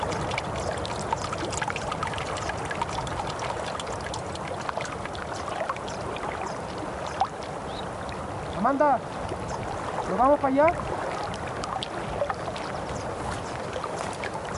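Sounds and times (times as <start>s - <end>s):
stream water running and gurgling: 0.0s - 14.5s
speech: 8.6s - 9.2s, 10.1s - 10.9s.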